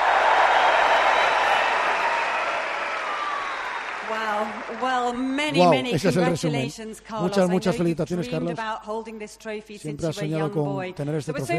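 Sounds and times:
huge stadium crowd cheering and applauding at a tennis trophy ceremony: 0.0s - 6.3s
speech: 4.8s - 11.5s.

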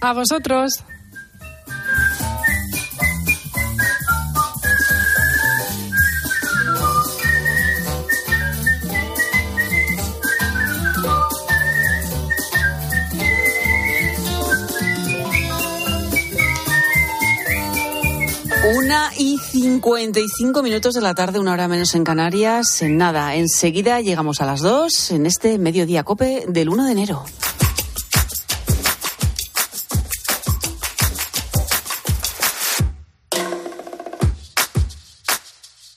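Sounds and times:
speech: 0.0s - 1.0s, 18.9s - 27.6s
woman whistling a flowing clear melody: 0.4s - 21.4s
instrumental backing with steady beats and chords: 0.9s - 23.3s, 27.2s - 35.7s.

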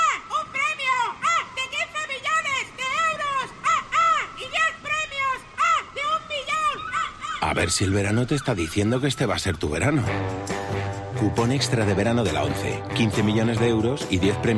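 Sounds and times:
seagulls calling: 0.0s - 10.4s
speech: 7.5s - 14.5s.

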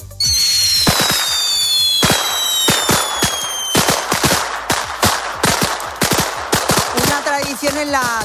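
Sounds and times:
whistling tones: 0.0s - 4.0s
firecrackers crackling and popping: 0.2s - 8.2s
speech: 7.7s - 8.2s.

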